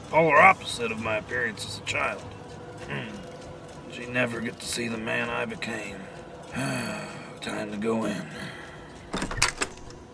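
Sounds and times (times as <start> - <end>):
speech: 0.1 - 3.2, 4.0 - 9.2
door without a lock opening with latch rattle: 9.1 - 10.1.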